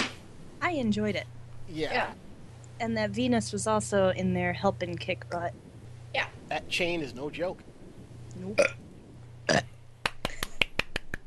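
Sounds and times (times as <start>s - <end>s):
low hum: 0.0s - 11.2s
speech: 0.7s - 2.2s, 2.8s - 7.7s, 8.4s - 8.8s, 9.5s - 9.7s
person belching: 8.4s - 8.8s, 9.5s - 9.8s.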